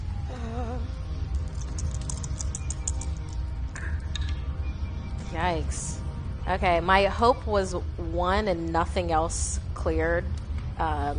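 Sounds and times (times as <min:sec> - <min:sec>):
low hum: 0:00.0 - 0:11.1
pair of dice rattling across a hard surface: 0:01.6 - 0:03.3
speech: 0:05.4 - 0:11.1.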